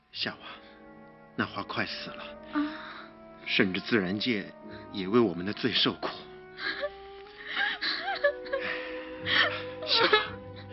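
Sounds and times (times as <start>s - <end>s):
speech: 0.2s - 0.6s, 1.4s - 2.9s, 3.5s - 6.8s, 9.2s - 10.4s
person crying in distress over a dying flower: 6.6s - 10.5s.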